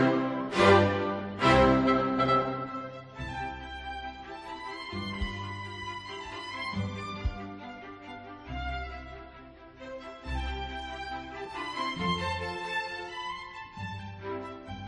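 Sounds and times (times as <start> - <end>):
orchestra with brass playing loud full chords of a concerto introduction: 0.0 - 3.2
sustained string harmonies: 0.0 - 14.8.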